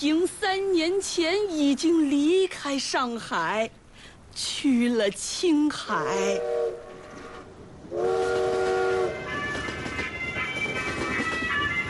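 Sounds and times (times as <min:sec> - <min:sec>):
speech: 0:00.0 - 0:03.8, 0:04.4 - 0:06.9, 0:07.9 - 0:08.5
train rumbling on tracks: 0:00.0 - 0:11.8
train horn or whistle blaring: 0:06.0 - 0:11.8.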